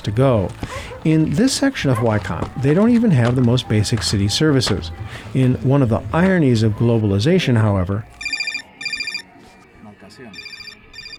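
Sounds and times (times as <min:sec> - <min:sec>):
speech: 0:00.0 - 0:08.2
cell phone ringing: 0:08.1 - 0:09.3, 0:10.2 - 0:11.1.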